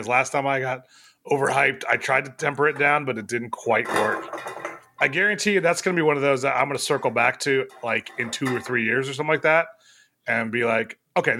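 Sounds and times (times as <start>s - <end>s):
speech: 0.0s - 11.3s
cans clinking and clattering together: 3.8s - 5.1s, 7.6s - 8.8s.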